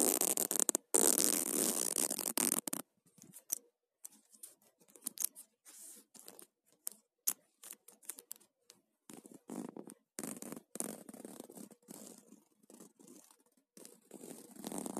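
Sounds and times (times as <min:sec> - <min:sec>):
zipper being pulled: 0:00.0 - 0:02.8, 0:09.1 - 0:14.9.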